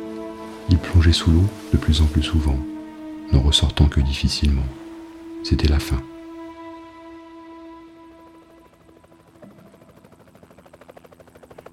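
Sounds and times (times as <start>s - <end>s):
speech: 0.7s - 2.7s, 3.3s - 4.8s, 5.4s - 6.1s
helicopter rotor blades chopping while hovering above water: 7.4s - 11.7s.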